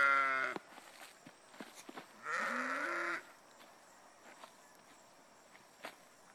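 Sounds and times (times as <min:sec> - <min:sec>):
sheep bleating: 0:00.0 - 0:00.6, 0:02.2 - 0:03.2
sheep hooves shuffling: 0:00.0 - 0:06.3
footsteps: 0:00.5 - 0:02.2, 0:03.5 - 0:06.3.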